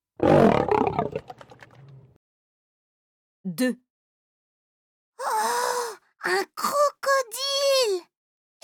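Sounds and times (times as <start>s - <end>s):
lion roaring: 0.2s - 1.4s
speech: 3.6s - 3.8s, 6.2s - 8.1s.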